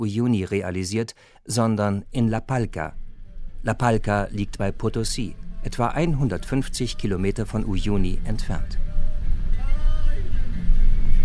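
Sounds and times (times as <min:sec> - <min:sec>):
speech: 0:00.0 - 0:03.0, 0:03.6 - 0:09.0
bus engine rumbling while climbing a winding serpentine mountain road in Uyuni, Bolivia: 0:01.8 - 0:11.2
thin wavering whine: 0:01.9 - 0:11.2.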